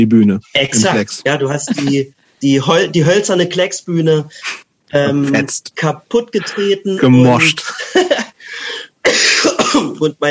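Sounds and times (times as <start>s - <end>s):
speech: 0.0s - 10.2s
laughter: 1.5s - 2.0s, 7.4s - 8.4s
raspy hoarse congested coughs: 9.0s - 10.0s.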